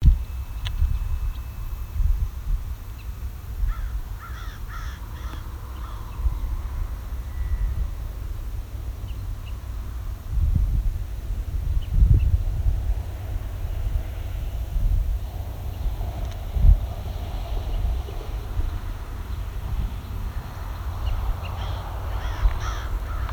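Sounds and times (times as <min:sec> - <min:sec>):
steady low rumble: 0:00.0 - 0:23.3
American crows cawing: 0:03.7 - 0:06.1, 0:21.4 - 0:23.3.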